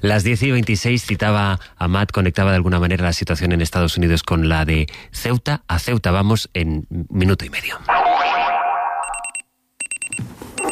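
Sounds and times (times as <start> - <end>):
speech: 0.0 - 8.4
sliding boing-like swoop: 7.9 - 9.2
bright rapid electronic alarm clock ringing: 8.9 - 10.7.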